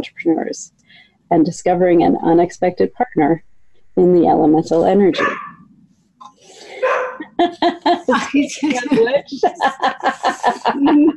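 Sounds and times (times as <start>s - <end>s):
speech: 0.0s - 5.4s, 7.4s - 11.1s
dog barking sharply: 5.1s - 5.6s, 6.8s - 7.2s
laughter: 6.5s - 11.1s.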